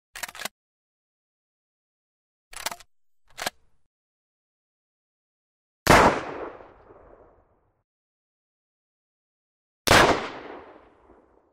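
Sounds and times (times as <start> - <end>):
TT pistol shots in a shooting range: 5.9 - 6.7, 9.9 - 10.9.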